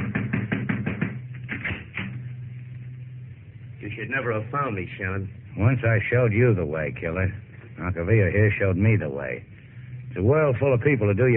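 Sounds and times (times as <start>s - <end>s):
sharp raps on a door: 0.0s - 1.9s
slower separate thumps: 0.0s - 2.3s
low hum: 0.0s - 11.3s
speech: 3.9s - 9.5s, 10.1s - 11.3s.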